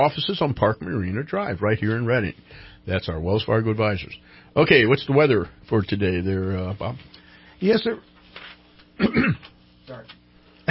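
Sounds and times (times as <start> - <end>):
speech: 0.0 - 8.1, 9.0 - 10.2
throat clearing from someone with a frog in their throat: 9.0 - 9.5.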